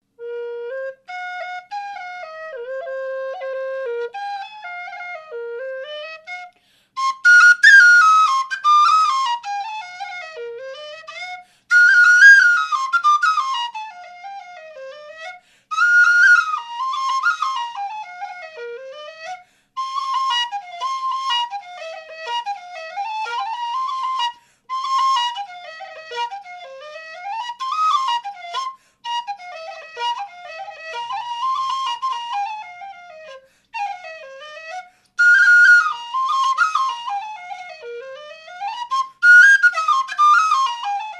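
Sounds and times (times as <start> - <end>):
B flat whistle playing a jig: 0.1 - 41.1.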